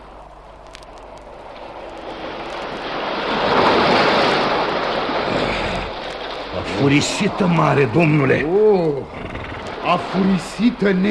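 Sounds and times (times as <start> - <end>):
windy hiss over the surf: 0.0 - 11.0
waves crashing against rocks: 1.6 - 11.0
speech: 6.8 - 11.0.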